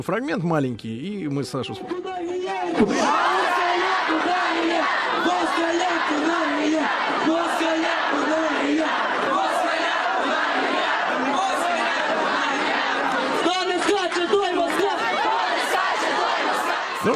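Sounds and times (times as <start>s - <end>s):
speech: 0.0s - 3.4s
general crowd noise: 1.6s - 17.1s
large crowd of children chanting a slogan in unison: 2.9s - 13.5s, 14.6s - 17.1s.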